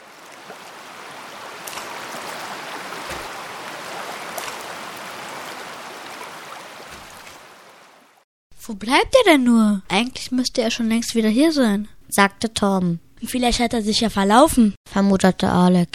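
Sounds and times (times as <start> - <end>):
steady rush of flowing stream water at the edge of a forest: 0.0 - 8.2
speech: 8.7 - 15.9.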